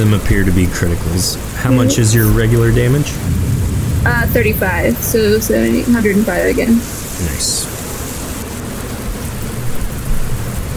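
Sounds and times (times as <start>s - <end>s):
speech: 0.0s - 3.4s, 4.0s - 7.8s
low continuous rumble of thunder: 0.0s - 8.4s
steady rain: 0.0s - 10.7s.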